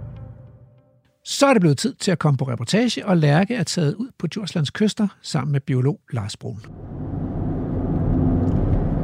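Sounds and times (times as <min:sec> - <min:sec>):
speech: 0:01.4 - 0:07.0
car driving heard from inside the cabin: 0:06.7 - 0:09.0.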